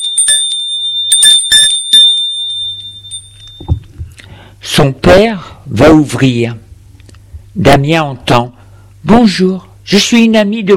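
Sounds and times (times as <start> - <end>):
doorbell ringing at the front door of a home: 0.0 - 3.9
low steady hum: 0.0 - 10.7
speech: 4.8 - 6.6, 7.6 - 10.7.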